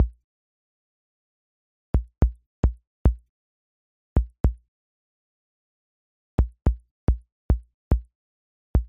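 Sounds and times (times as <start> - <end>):
kick drum loop: 2.0 - 3.2, 6.4 - 8.1.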